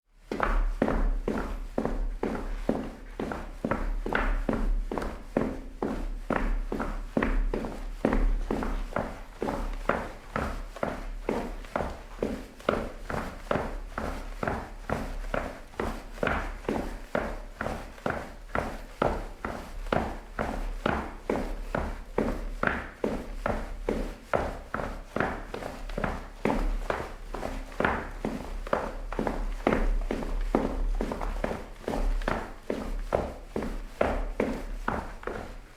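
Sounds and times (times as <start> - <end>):
footsteps in cleats: 0.2 - 35.7.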